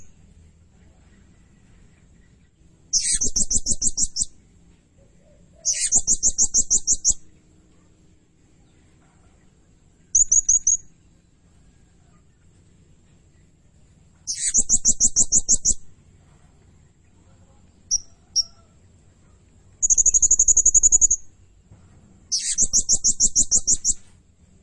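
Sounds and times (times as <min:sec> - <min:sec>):
blue-crowned hanging parrot calling with thin high chips and pulsed trills: 0:02.9 - 0:04.3, 0:05.1 - 0:07.3, 0:14.2 - 0:15.9, 0:17.9 - 0:18.7, 0:19.8 - 0:21.3, 0:22.3 - 0:24.0.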